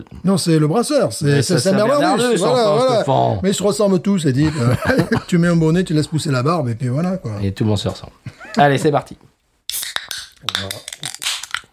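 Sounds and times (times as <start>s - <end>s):
speech: 0.0s - 9.3s
laughter: 4.4s - 5.4s
beer can popping open: 10.0s - 11.7s.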